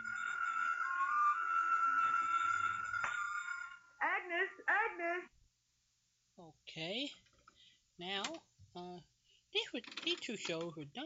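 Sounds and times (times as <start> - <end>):
telephone ringing with a steady electronic tone: 0.0 - 4.0
short wavering vocal sounds: 0.0 - 5.3
speech: 4.5 - 5.4, 6.4 - 7.3, 8.0 - 11.0.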